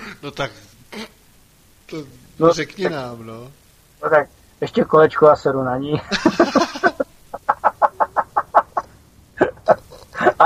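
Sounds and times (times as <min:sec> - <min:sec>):
speech: 0:00.2 - 0:01.2, 0:01.9 - 0:06.6
laughter: 0:06.0 - 0:10.4
hens clucking: 0:06.7 - 0:08.9.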